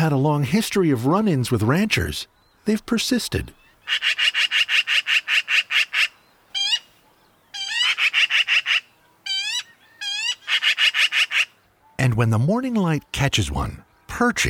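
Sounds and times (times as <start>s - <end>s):
speech: 0.0s - 4.4s, 12.1s - 14.4s
black-billed magpie chattering: 3.6s - 6.9s, 7.6s - 11.5s.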